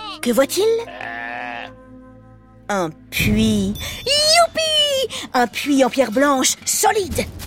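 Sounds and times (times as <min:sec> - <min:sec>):
speech: 0:00.2 - 0:01.1, 0:02.7 - 0:07.4
single sheep bleating: 0:00.8 - 0:01.9.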